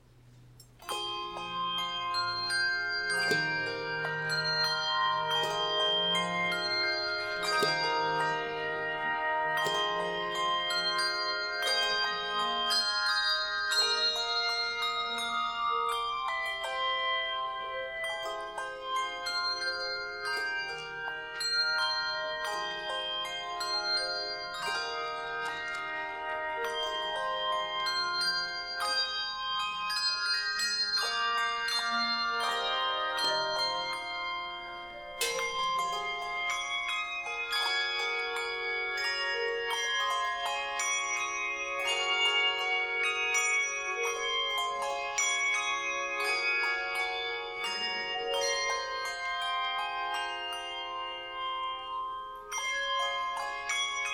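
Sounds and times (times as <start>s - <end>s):
carillon bells playing an offertory: 0.6s - 54.1s.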